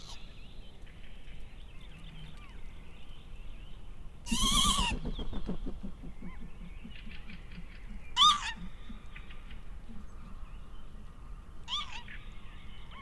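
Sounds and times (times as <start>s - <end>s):
northern lapwings Vanellus vanellus giving sharp rising wheezy calls over an open field: 4.3s - 5.0s, 8.2s - 8.7s, 11.7s - 12.1s.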